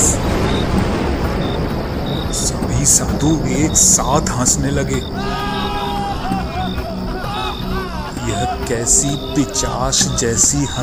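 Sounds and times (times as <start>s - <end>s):
loud thunder rumbling: 0.0s - 8.2s
speech: 2.8s - 5.5s, 8.7s - 10.8s
laughter: 4.8s - 10.8s.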